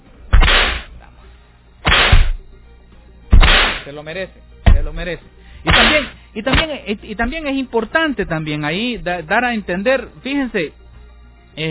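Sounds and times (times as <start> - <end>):
whip cracks: 0.3 - 0.9, 1.9 - 2.4, 3.4 - 3.9, 5.7 - 6.7
speech: 3.9 - 10.8.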